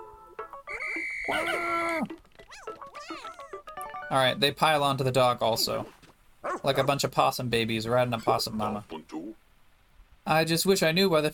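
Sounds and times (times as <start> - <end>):
video game whistle call: 0.7 - 1.9
chirpy warbling little creature squeaks and croaks: 0.8 - 3.6
speech: 1.3 - 3.4, 4.1 - 6.0, 6.6 - 9.0, 10.3 - 11.3.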